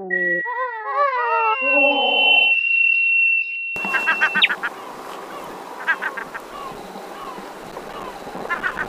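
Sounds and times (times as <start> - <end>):
gull calls: 0.1 - 2.6, 3.8 - 8.8
windy outdoor background: 3.7 - 8.8.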